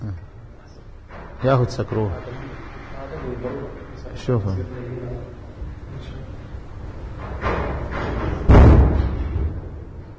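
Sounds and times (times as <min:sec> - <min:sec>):
speech: 0:01.4 - 0:02.4, 0:03.2 - 0:05.4
house door slamming shut: 0:07.2 - 0:09.9.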